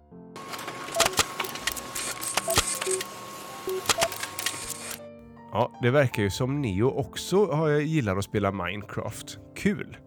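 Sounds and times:
printer printing a written evening story: 0.4s - 5.0s
speech: 5.5s - 10.0s.

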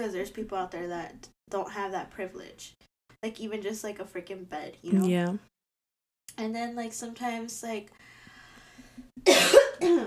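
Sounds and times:
speech: 0.0s - 5.5s, 6.3s - 8.1s, 9.2s - 10.0s
person coughing harshly: 9.2s - 10.0s.

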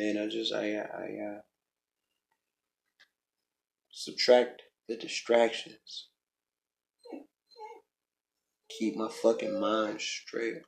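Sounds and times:
speech: 0.0s - 1.5s, 4.0s - 6.1s, 7.1s - 7.3s, 8.7s - 10.6s
dog whining for attention: 7.0s - 7.9s.

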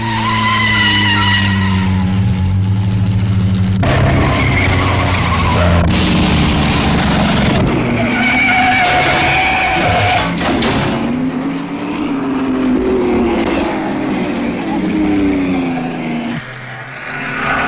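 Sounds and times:
race car tires squealing: 0.0s - 2.6s, 3.8s - 14.0s, 14.6s - 17.6s
vintage race car engines roaring past on a circuit: 0.0s - 17.6s.

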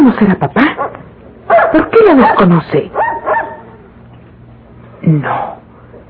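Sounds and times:
speech: 0.1s - 0.8s, 1.5s - 3.1s, 5.0s - 5.6s
dog barking sharply: 0.8s - 3.8s.

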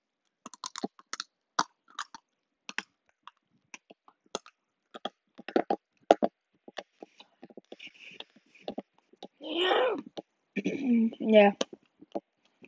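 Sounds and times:
dry brittle raw spaghetti being chewed: 0.4s - 6.3s
speech: 10.7s - 11.6s.

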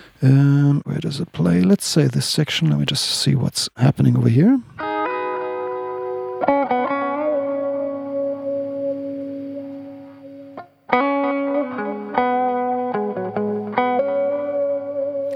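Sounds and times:
speech: 0.2s - 4.8s
distorted lead guitar with tape delay echoes and reverb: 4.8s - 15.3s.

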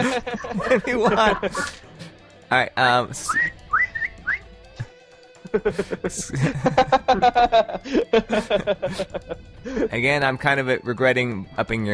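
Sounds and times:
laughter: 0.0s - 1.9s, 5.4s - 9.9s
speech: 0.2s - 1.8s, 2.5s - 3.6s, 5.5s - 11.9s
person whistling short rising notes: 3.3s - 4.5s.

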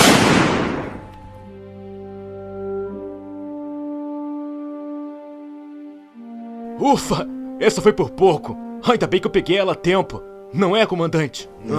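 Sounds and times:
gunshot fired by a soldier: 0.0s - 1.2s
speech: 6.8s - 11.7s.

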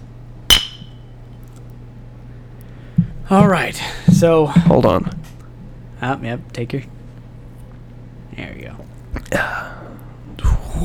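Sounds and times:
low steady hum: 0.0s - 10.8s
glasses clinking in a toast: 0.5s - 1.0s
speech: 3.3s - 5.2s, 6.0s - 7.0s, 8.4s - 9.9s.

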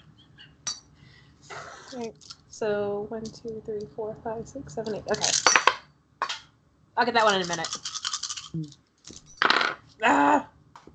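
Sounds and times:
speech: 1.9s - 5.6s, 7.0s - 7.9s, 8.5s - 8.8s, 10.0s - 10.5s
eight dice clattering across a hard tabletop: 7.2s - 9.9s.

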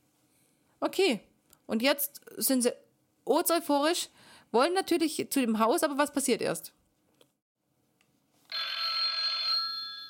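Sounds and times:
speech: 0.8s - 6.8s
telephone bell ringing: 8.5s - 10.0s.

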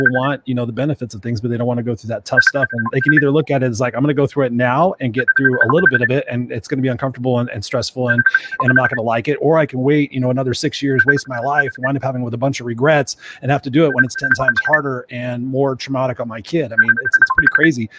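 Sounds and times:
messenger app incoming-call ringtone: 0.0s - 0.3s, 2.4s - 3.3s, 5.2s - 6.1s, 8.1s - 9.0s, 11.0s - 12.0s, 13.9s - 14.8s, 16.7s - 17.8s
speech: 0.0s - 17.9s.

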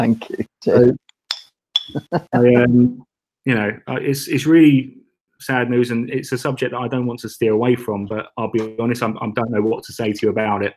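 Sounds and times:
speech: 0.0s - 1.0s, 1.9s - 10.7s
glasses clinking in a toast: 0.8s - 2.7s.

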